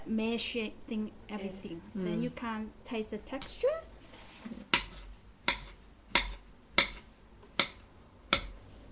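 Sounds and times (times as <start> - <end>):
speech: 0.1 - 4.7
knife chopping food on a cutting board: 4.7 - 8.6.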